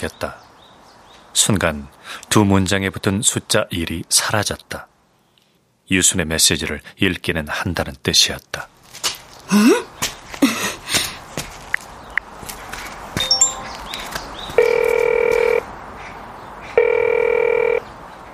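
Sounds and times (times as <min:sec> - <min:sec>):
speech: 0:00.0 - 0:00.4, 0:01.4 - 0:04.9, 0:05.9 - 0:10.6
handling noises: 0:08.8 - 0:15.6
phone ringback tone: 0:13.2 - 0:13.9, 0:14.6 - 0:15.6, 0:16.8 - 0:17.8.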